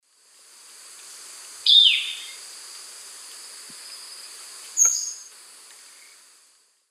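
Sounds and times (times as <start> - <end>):
Pipra erythrocephala call in eastern lowlands of South America: 1.7 - 2.4, 4.8 - 5.3.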